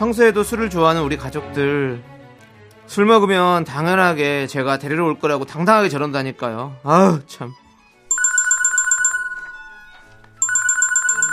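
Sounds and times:
speech: 0.0s - 2.1s, 2.9s - 7.6s
mobile phone ringtone for an incoming call: 8.1s - 11.3s.

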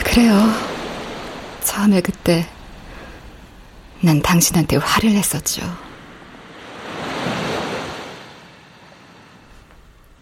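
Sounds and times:
ocean waves washing onto a shore: 0.0s - 10.2s
speech: 0.2s - 0.7s, 1.6s - 2.6s, 4.0s - 5.8s.

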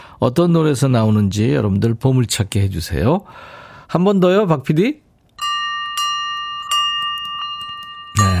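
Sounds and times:
speech: 0.2s - 5.0s
clear ringing bell: 5.4s - 8.3s.

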